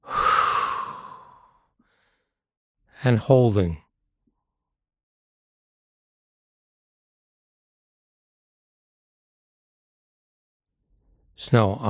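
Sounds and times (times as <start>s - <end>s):
forceful exhale during a guided breathing exercise: 0.0s - 2.3s
speech: 3.0s - 3.8s, 11.4s - 11.8s.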